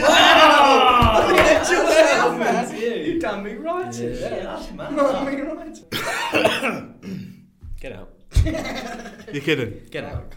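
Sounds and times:
laughter: 0.0 - 6.6, 8.3 - 9.7
speech: 3.4 - 7.2, 7.8 - 10.3
single sharp throaty cough: 5.9 - 7.5.

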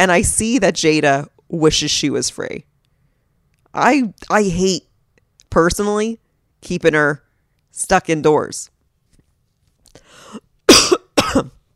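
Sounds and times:
speech: 0.0 - 2.7, 3.7 - 4.9, 5.5 - 7.2, 7.8 - 8.8, 11.3 - 11.6
person coughing sharply: 10.2 - 11.6.

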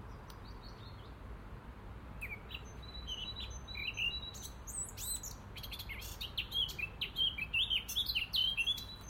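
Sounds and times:
small birds singing and chirping in trees: 0.0 - 1.4, 2.1 - 9.0.

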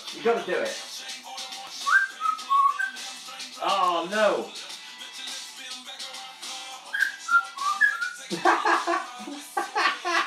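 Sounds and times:
speech: 0.1 - 1.0, 3.6 - 4.7, 8.3 - 9.5
parrot whistling short clear notes: 1.8 - 3.1, 6.9 - 8.3
parrot raspy laugh-like vocal bursts: 8.2 - 10.2.

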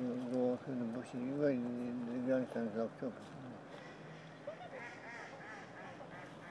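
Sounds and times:
constant outdoor hiss: 0.0 - 6.4
speech: 1.1 - 3.4
ducks quacking: 3.7 - 6.4.

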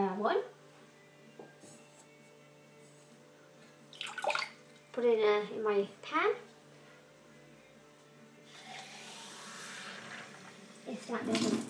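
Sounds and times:
speech: 0.2 - 0.6, 5.0 - 6.5, 11.1 - 11.6
water poured into a plastic pudding cup for cooking rice: 4.0 - 4.6, 8.5 - 11.6.

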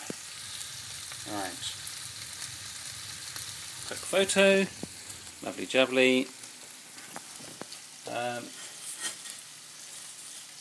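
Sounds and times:
meatballs frying in a pan: 0.0 - 10.5
speech: 1.2 - 1.8, 3.9 - 4.8, 5.4 - 6.4, 8.1 - 8.6
squeaky scrape: 8.6 - 9.4.

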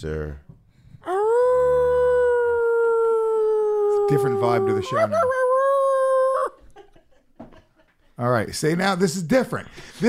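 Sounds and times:
speech: 0.0 - 0.5, 4.1 - 5.4, 8.2 - 10.0
man imitating a coyote howl: 1.0 - 6.6.

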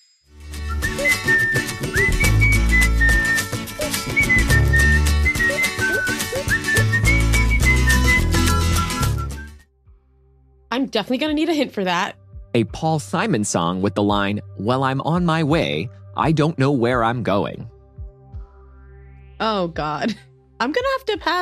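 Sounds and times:
person whistling a bouncy pop melody: 0.6 - 9.6
full band backing track with drums and bass: 0.7 - 9.4
speech: 10.8 - 17.7, 19.4 - 21.4.

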